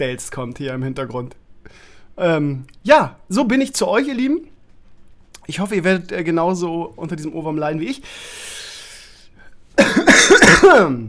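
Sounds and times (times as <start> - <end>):
speech: 0.0 - 4.5, 5.5 - 8.5, 9.8 - 11.0
slightly ill person coughing harshly: 9.8 - 11.0.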